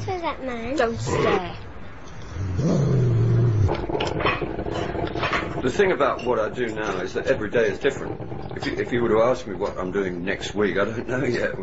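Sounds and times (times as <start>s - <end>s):
steady rumble: 0.0s - 11.6s
speech: 0.2s - 1.6s, 5.6s - 11.6s
dog growling: 0.9s - 1.6s, 2.2s - 11.6s.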